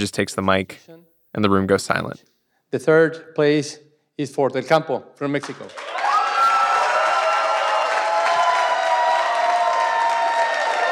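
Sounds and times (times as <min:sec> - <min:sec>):
speech: 0:00.0 - 0:06.0
large crowd shouting and cheering at an award announcement: 0:05.7 - 0:10.9.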